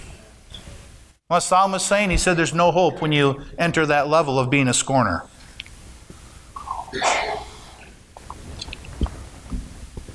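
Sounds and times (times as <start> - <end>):
speech: 1.3 - 5.3
listener sneezing during a morning sermon: 6.6 - 7.8
faint throat noises from listeners: 6.6 - 8.0.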